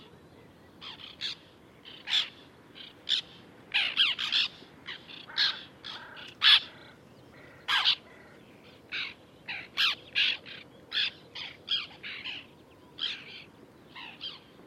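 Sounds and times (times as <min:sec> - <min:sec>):
white-winged tern: 0:00.8 - 0:08.1, 0:08.9 - 0:14.5.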